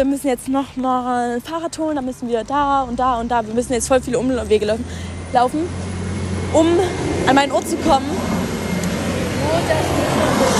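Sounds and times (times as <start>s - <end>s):
speech: 0.0s - 8.4s, 9.5s - 10.4s
train rolling past with a loud rumble: 2.6s - 10.5s.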